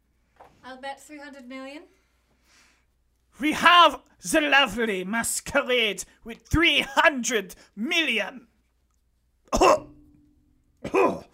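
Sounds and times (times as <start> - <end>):
speech: 0.7 - 2.6, 3.4 - 8.5, 9.5 - 9.9
sharp harsh coughs: 9.5 - 10.1, 10.8 - 11.3.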